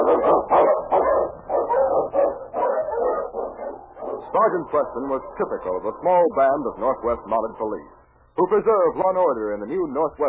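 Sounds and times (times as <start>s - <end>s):
sled dog barking excitedly with whimpering: 0.0s - 5.5s
speech: 4.4s - 10.2s.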